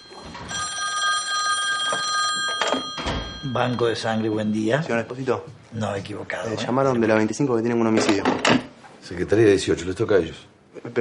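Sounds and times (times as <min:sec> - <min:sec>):
telephone on an office desk ringing with an electronic trill: 0:00.0 - 0:05.1
speech: 0:03.4 - 0:11.0.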